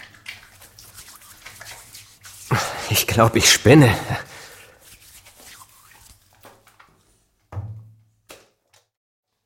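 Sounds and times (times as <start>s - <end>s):
shower water running: 0.0s - 7.1s
speech: 2.9s - 4.3s.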